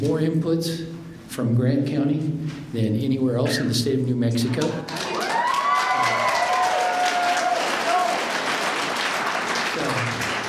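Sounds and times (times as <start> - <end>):
speech: 0.0 - 5.0
audience applause: 4.6 - 10.4
audience voices cheering and calling out: 4.9 - 9.0.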